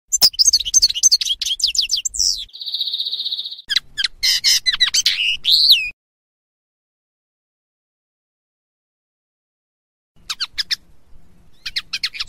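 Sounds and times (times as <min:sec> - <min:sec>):
common linnet Carduelis cannabina singing twittering phrases: 0:00.1 - 0:06.0, 0:10.2 - 0:12.2.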